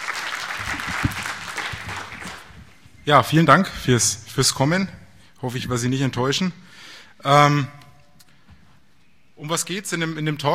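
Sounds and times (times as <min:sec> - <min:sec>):
audience at a conference session applauding: 0:00.0 - 0:02.7
speech: 0:03.1 - 0:07.8, 0:09.4 - 0:10.5.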